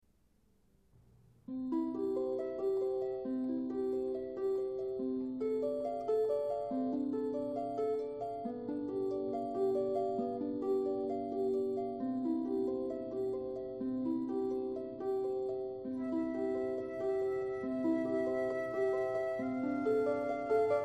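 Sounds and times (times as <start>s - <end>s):
harp: 1.4s - 20.8s
flute: 15.9s - 20.8s.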